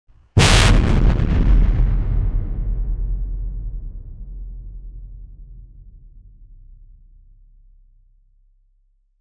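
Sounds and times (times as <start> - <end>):
explosion with bass boost: 0.4 - 6.2.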